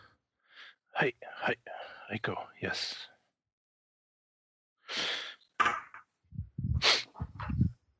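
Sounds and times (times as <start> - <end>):
speech: 1.0 - 3.1
person sobbing and sniffing: 6.4 - 7.7.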